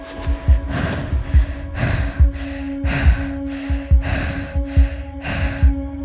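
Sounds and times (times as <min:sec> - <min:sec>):
heavy frightened breathing of a person clutching a bat: 0:00.0 - 0:06.0
soft thumping pulses: 0:00.0 - 0:06.0.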